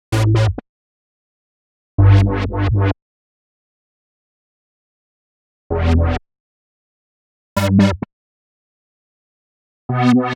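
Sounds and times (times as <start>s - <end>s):
bass in E minor at 129 bpm: 0.1s - 0.6s, 2.0s - 3.0s, 5.7s - 6.2s, 7.6s - 8.1s, 9.9s - 10.3s.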